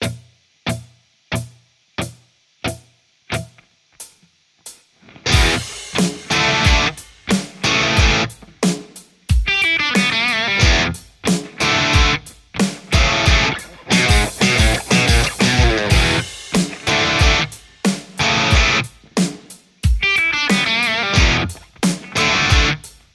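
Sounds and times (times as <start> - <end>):
Telecaster electric guitar through a hot Marshall JCM800 amplifier: 5.0 - 8.6, 9.4 - 19.2, 20.0 - 23.1.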